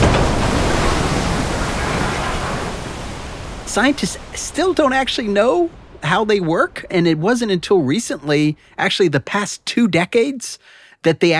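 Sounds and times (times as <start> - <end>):
massive ocean wave crashing: 0.0 - 9.1
speech: 3.7 - 11.3.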